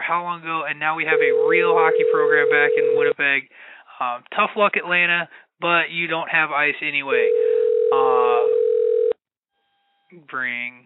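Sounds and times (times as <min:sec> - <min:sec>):
speech: 0:00.1 - 0:08.6, 0:10.1 - 0:10.8
telephone ringing tone of an outgoing call: 0:01.1 - 0:03.1, 0:07.2 - 0:09.2.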